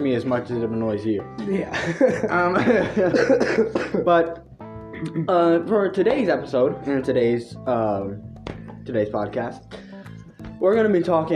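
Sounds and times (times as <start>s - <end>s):
speech: 0.0s - 9.8s, 10.6s - 11.3s
laughter: 1.7s - 4.2s
harsh throaty coughs: 3.0s - 4.2s
throat clearing: 3.2s - 4.1s.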